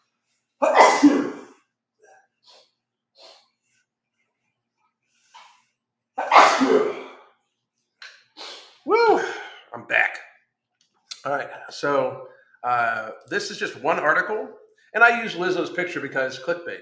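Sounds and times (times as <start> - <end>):
loud explosive sneezes: 0.6 - 1.6, 6.2 - 7.2, 8.4 - 9.6
speech: 11.3 - 16.8.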